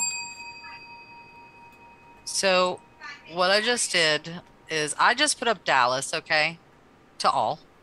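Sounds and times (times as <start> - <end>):
bell ding: 0.0 - 3.6
speech: 2.3 - 6.6, 7.2 - 7.7.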